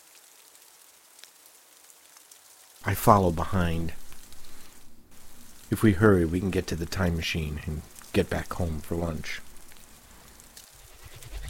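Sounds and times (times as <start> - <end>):
steady rain falling outside: 0.0 - 11.4
speech: 2.8 - 4.0, 5.7 - 9.5.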